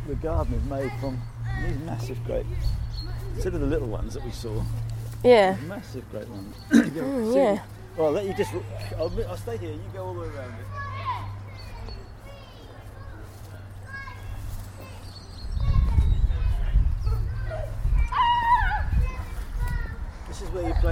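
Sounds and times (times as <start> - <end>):
speech: 0.1 - 10.9
children playing hide and seek, calling out and counting: 10.3 - 20.3.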